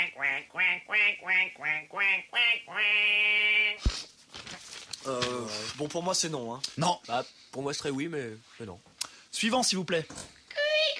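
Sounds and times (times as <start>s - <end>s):
human voice imitating duck quacks: 0.0s - 3.9s
speech: 0.1s - 4.0s, 5.0s - 10.9s.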